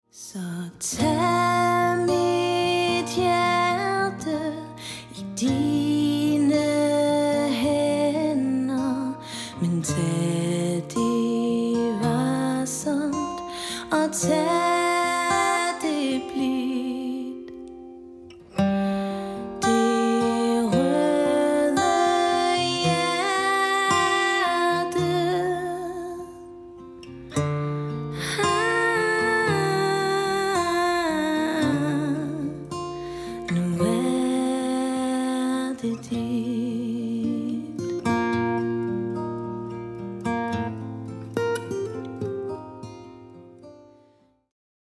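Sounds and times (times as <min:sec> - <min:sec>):
woman singing: 0:00.1 - 0:17.9, 0:18.8 - 0:39.0
guitarist playing guitar: 0:00.9 - 0:44.1.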